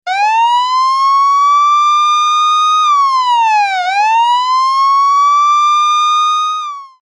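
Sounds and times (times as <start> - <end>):
police siren alarm: 0.1 - 7.0.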